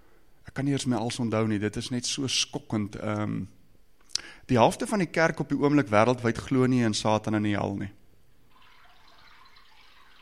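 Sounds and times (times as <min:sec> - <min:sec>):
speech: 0:00.6 - 0:03.6, 0:04.5 - 0:08.0
water running in a steady stream: 0:08.5 - 0:10.2.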